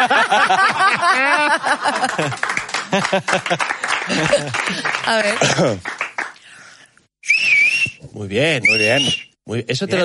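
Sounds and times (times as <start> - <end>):
laughter: 0.0 - 5.8
speech: 0.0 - 6.0, 8.1 - 10.0
breathy, airy rush of blowing: 6.4 - 8.0
loud shrill two-finger whistle: 7.2 - 8.0, 8.6 - 9.4.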